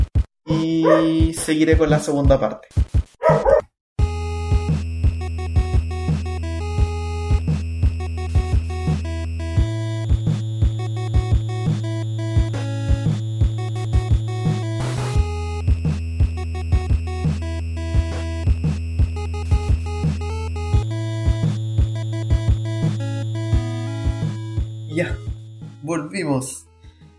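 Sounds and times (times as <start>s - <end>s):
speech: 0.5s - 3.4s, 26.2s - 26.7s
pet dog barking: 0.8s - 1.2s, 3.2s - 3.7s
steady droning music bed: 4.0s - 27.1s.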